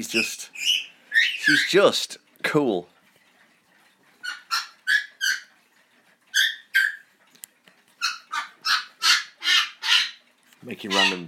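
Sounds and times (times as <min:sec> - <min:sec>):
speech: 0:00.0 - 0:00.8, 0:01.5 - 0:02.9, 0:10.7 - 0:11.2
pet parrot squawking and calling: 0:00.1 - 0:01.9, 0:04.2 - 0:05.5, 0:06.3 - 0:07.1, 0:08.0 - 0:10.2, 0:10.8 - 0:11.2.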